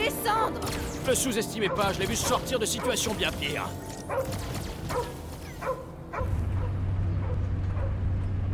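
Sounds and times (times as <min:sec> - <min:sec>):
speech: 0:00.1 - 0:05.8
dog barking: 0:04.1 - 0:08.5
steady low hum: 0:06.0 - 0:08.5.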